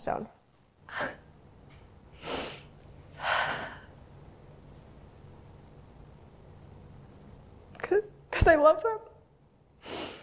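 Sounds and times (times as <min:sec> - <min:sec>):
speech: 0:00.0 - 0:01.2, 0:08.4 - 0:09.1
person breathing deeply to steady themselves: 0:02.2 - 0:03.9.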